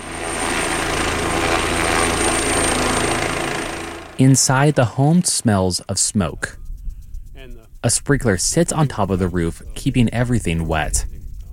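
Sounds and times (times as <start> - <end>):
helicopter rotor roar while scooping water from a pond: 0.0 - 11.5
speech: 4.2 - 6.6, 7.4 - 11.2.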